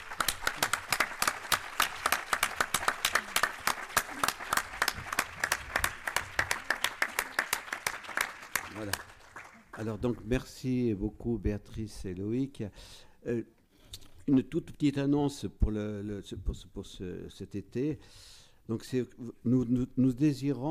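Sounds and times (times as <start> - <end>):
room full of people applauding: 0.0 - 10.0
speech: 9.8 - 20.7.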